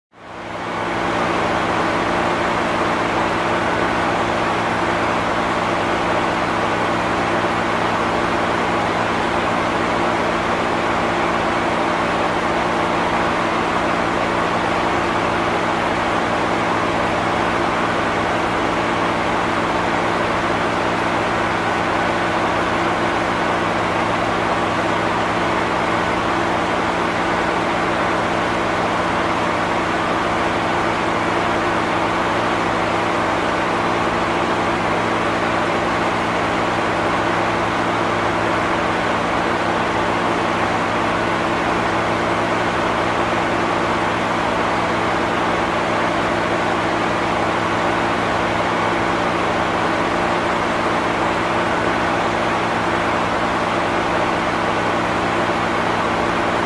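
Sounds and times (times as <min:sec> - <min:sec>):
generator running in a boiler room: 0:00.2 - 0:56.6.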